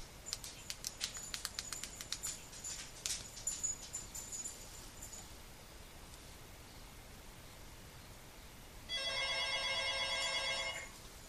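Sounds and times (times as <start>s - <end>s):
phone ringing from an incoming cell phone call: 8.9s - 11.0s.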